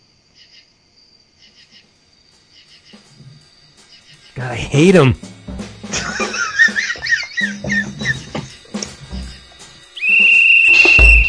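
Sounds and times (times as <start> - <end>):
cricket chirping: 0.0 - 11.2
speech: 4.4 - 5.3
laughter: 5.9 - 8.3.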